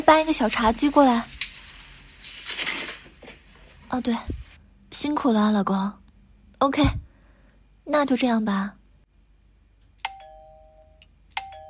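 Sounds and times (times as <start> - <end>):
speech: 0.1 - 1.3, 3.9 - 6.0, 6.6 - 7.1, 7.9 - 8.8
doorbell chiming: 10.1 - 11.6.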